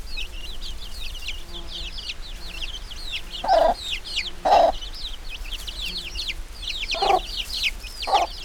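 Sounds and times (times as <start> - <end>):
juvenile Gallus domestica calling: 3.1 - 5.1, 6.7 - 8.4.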